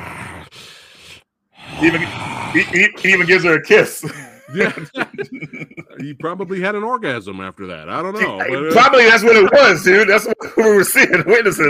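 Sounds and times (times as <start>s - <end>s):
person imitating heavy breathing: 0.0s - 3.5s
speech: 1.8s - 11.6s
laughter: 2.8s - 6.7s.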